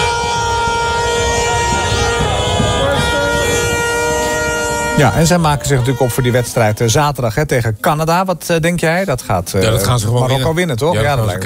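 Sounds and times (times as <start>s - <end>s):
crowd cheering in a busy street: 0.0s - 7.0s
voices shouting: 0.0s - 7.0s
car horns honking in a busy street: 0.0s - 7.1s
speech: 5.0s - 11.4s.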